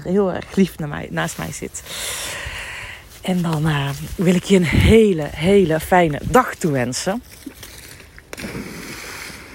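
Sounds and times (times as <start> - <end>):
speech: 0.0 - 2.5, 3.2 - 7.6
outdoor noise: 0.0 - 9.5
stick thrown for a dog splashing into water: 8.3 - 9.5.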